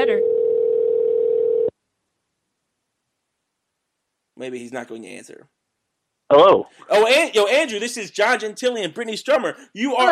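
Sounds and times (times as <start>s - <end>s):
phone ringback tone from an outgoing call: 0.0s - 1.7s
speech: 4.4s - 5.6s, 6.3s - 10.1s.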